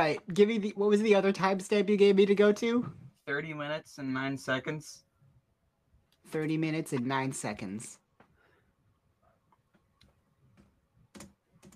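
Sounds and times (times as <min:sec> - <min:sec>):
speech: 0:00.0 - 0:05.1, 0:06.3 - 0:08.0
typing on a computer keyboard: 0:10.0 - 0:11.7.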